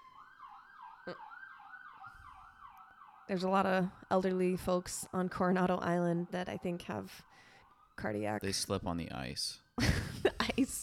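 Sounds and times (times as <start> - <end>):
emergency vehicle siren on Coronado Island: 0.0 - 9.6
speech: 1.0 - 1.3, 3.3 - 10.8.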